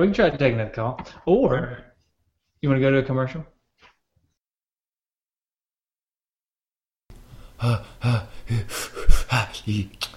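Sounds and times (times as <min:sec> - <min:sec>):
speech: 0:00.0 - 0:01.9, 0:02.6 - 0:03.5, 0:07.6 - 0:10.1
man breathing heavily and theatrically to calm down: 0:07.3 - 0:09.8.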